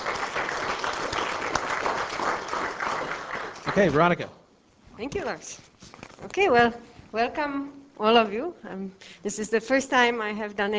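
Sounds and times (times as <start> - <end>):
crowd applauding: 0.0 - 4.2
speech: 3.8 - 4.4, 5.0 - 10.7.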